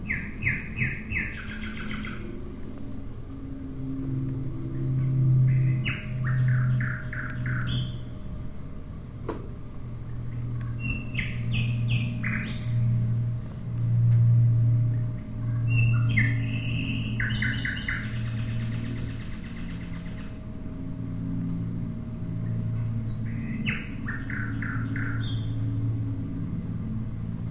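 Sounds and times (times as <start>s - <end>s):
nightingale singing: 0.0s - 2.4s, 5.2s - 8.2s, 10.6s - 12.9s, 15.4s - 20.4s, 22.5s - 25.7s
Lancaster and Wellington bombers rumbling: 0.0s - 27.4s.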